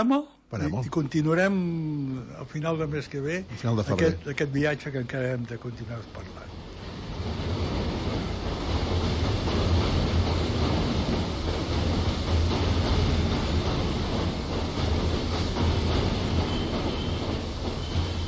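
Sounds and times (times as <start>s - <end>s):
speech: 0.0s - 7.4s
train braking to a stop arriving at the station in A Coruña: 1.0s - 18.2s
faint squeal of train wheels on rails: 5.6s - 18.2s.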